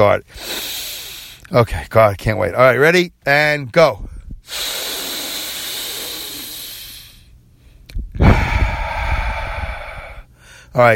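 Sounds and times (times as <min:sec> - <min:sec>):
speech: 0:00.0 - 0:00.8, 0:01.5 - 0:05.0, 0:10.8 - 0:10.9
practice breath through a congested, stuffy nose: 0:00.2 - 0:01.5, 0:04.1 - 0:10.7.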